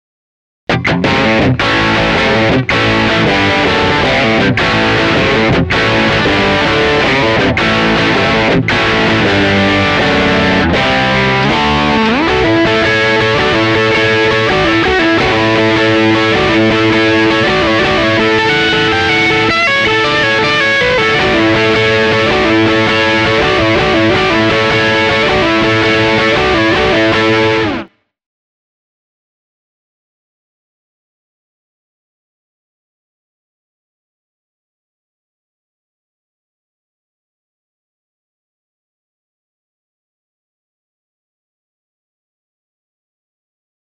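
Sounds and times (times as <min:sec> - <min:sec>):
guitar through an AC30 amplifier: 0:00.7 - 0:28.0.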